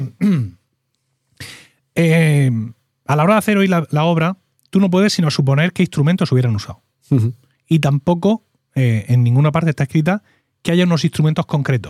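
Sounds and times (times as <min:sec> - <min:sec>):
person coughing: 0:00.0 - 0:00.6
speech: 0:02.0 - 0:11.8.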